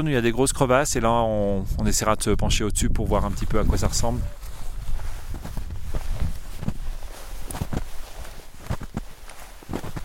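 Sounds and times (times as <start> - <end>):
speech: 0.0 - 4.4
slow footsteps crunching through 5-6 cm of snow on a glacier: 3.6 - 10.0.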